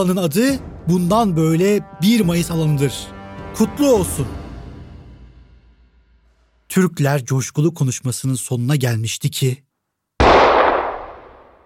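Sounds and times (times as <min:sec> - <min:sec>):
speech: 0:00.0 - 0:04.4, 0:06.7 - 0:10.5
single loud gunshot with rumbling echo in a packed public square: 0:10.2 - 0:11.6.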